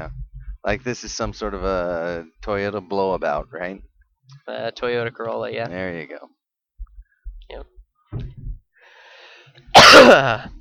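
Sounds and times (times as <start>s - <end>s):
speech: 0.0s - 3.9s, 4.5s - 6.4s, 7.5s - 7.7s, 10.0s - 10.6s
soft inhale: 8.8s - 9.6s
raspy coughing: 9.7s - 10.5s.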